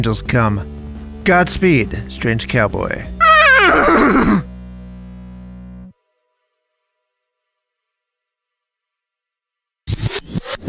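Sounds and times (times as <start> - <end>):
speech: 0.0 - 0.7, 1.3 - 4.5
horse whinnying: 3.2 - 4.5.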